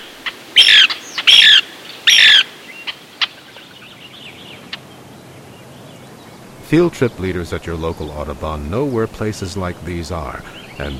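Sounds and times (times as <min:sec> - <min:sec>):
Lewis's woodpecker raspy squawks: 0:00.0 - 0:03.9
speech: 0:06.7 - 0:10.9.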